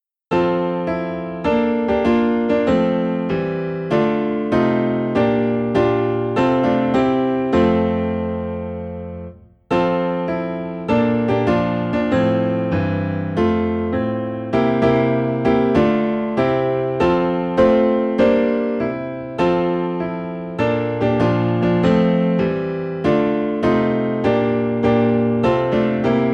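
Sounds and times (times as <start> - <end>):
Christmas piano piece in F: 0.0 - 26.3.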